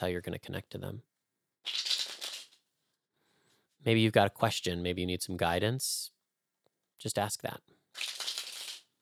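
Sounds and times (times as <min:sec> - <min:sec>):
speech: 0:00.0 - 0:01.9, 0:03.8 - 0:06.1, 0:07.0 - 0:08.1
tarot cards being shuffled: 0:01.7 - 0:02.6, 0:08.0 - 0:08.9.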